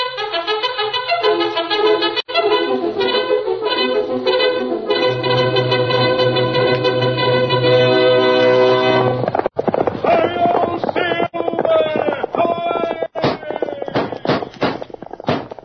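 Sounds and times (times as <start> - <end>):
loud orchestral music: 0.0 - 9.2
galloping horse hoofbeats: 5.2 - 15.6.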